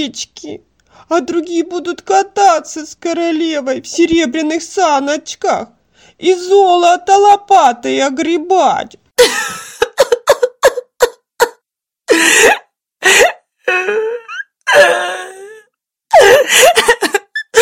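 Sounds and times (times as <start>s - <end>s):
speech: 0.0s - 9.7s
girl crying and sobbing: 9.2s - 17.6s.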